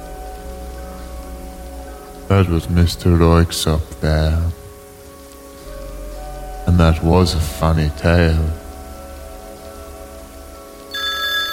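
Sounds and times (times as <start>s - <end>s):
speech: 2.3s - 4.6s, 6.7s - 8.6s
telephone ringing with bright electronic trill: 10.9s - 11.5s.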